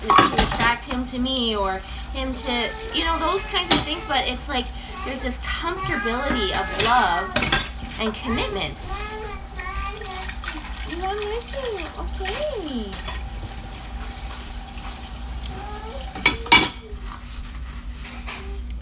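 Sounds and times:
speech: 0.0s - 0.4s, 1.1s - 9.2s, 11.0s - 13.1s
sharp clatter of dishes and cutlery: 0.0s - 1.0s, 3.5s - 4.1s, 5.8s - 8.6s, 16.1s - 17.0s
steady running water washing dishes: 0.0s - 18.0s.

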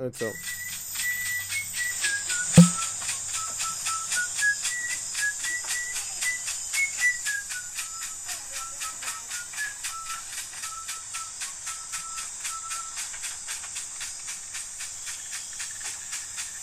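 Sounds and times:
speech: 0.0s - 0.6s
man whistling a slow wavering melody: 0.3s - 13.1s
sharp thump: 2.6s - 2.8s.

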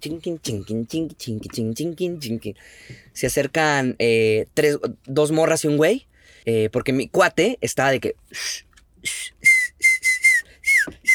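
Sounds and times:
speech: 0.0s - 9.4s
person whistling short breathy notes: 9.0s - 11.1s.

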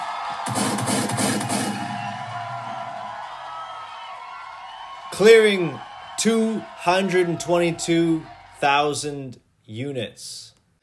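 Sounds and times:
crowd cheering and whooping: 0.0s - 8.6s
speech: 5.2s - 10.5s.

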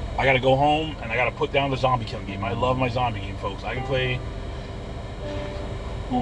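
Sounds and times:
speech: 0.2s - 4.4s
airplane passing overhead: 1.9s - 6.2s.

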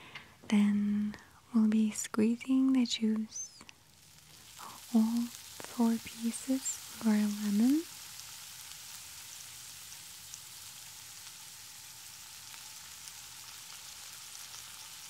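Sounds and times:
speech: 0.5s - 0.8s, 2.2s - 3.5s, 4.9s - 7.9s
food frying in a hot pan: 3.4s - 15.0s.

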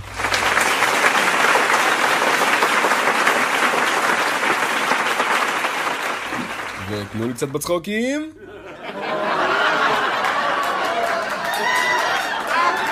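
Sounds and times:
sustained applause from a sizable crowd: 0.0s - 7.7s, 8.8s - 12.9s
speech: 6.9s - 9.1s
laughter: 8.3s - 12.9s.

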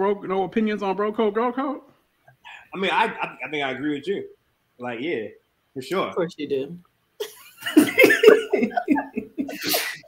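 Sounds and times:
speech: 0.0s - 1.9s, 2.5s - 9.8s
laughter: 2.8s - 3.6s, 7.2s - 10.0s
person sneezing: 9.5s - 10.0s.

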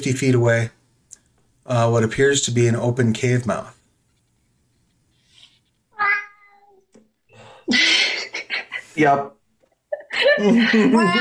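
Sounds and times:
speech: 0.0s - 0.8s, 1.6s - 3.8s, 9.0s - 9.4s, 10.1s - 11.1s
cat meowing: 6.0s - 6.8s
laughter: 9.9s - 11.1s.

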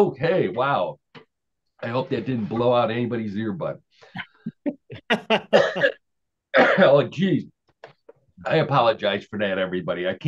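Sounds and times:
speech: 0.0s - 1.0s, 1.8s - 6.0s, 6.6s - 7.5s, 8.4s - 10.2s
laughter: 4.2s - 5.9s
person clearing throat: 5.5s - 6.0s, 6.6s - 7.0s.

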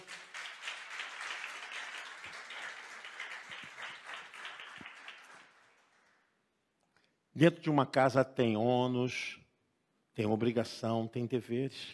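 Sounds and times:
crowd applauding in a reverberant room: 0.0s - 6.3s
speech: 7.4s - 9.4s, 10.2s - 11.9s.

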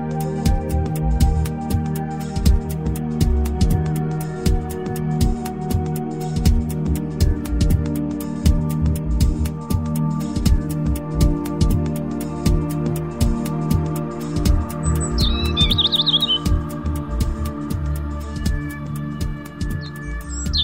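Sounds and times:
regular ticking: 0.3s - 20.6s
bird chirps and trill: 14.6s - 20.6s.

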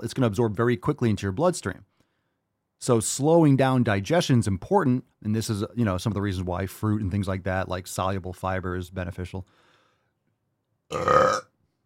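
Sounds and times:
speech: 0.0s - 1.9s, 2.8s - 9.6s, 10.9s - 11.5s
loud throaty burp with a rough buzzy tone: 10.9s - 11.6s.

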